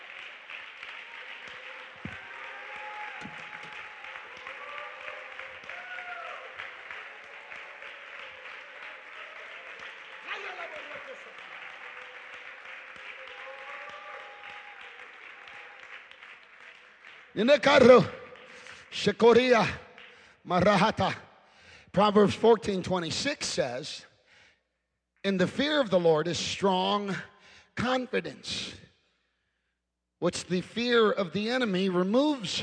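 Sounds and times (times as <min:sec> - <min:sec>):
audience applauding: 0:00.0 - 0:20.2
voices calling and cheering: 0:01.1 - 0:15.7
speech: 0:17.4 - 0:18.2, 0:19.0 - 0:19.8, 0:20.5 - 0:21.2, 0:21.9 - 0:24.1, 0:25.2 - 0:28.8, 0:30.2 - 0:32.6.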